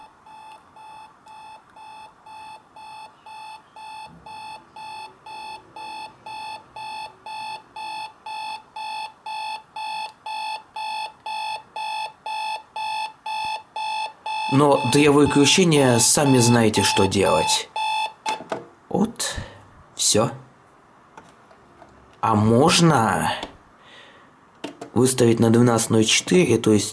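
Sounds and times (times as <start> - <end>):
alarm clock buzzer beeping in a rapid pulsing pattern: 0.0 - 18.2
speech: 14.5 - 17.7, 20.1 - 20.4, 22.2 - 23.5, 25.0 - 26.9.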